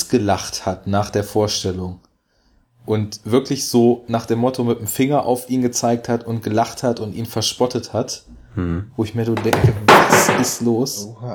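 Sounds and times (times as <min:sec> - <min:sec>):
speech: 0:00.1 - 0:02.0, 0:02.9 - 0:11.3
smartphone dropping and clattering against a hard surface: 0:09.4 - 0:10.7.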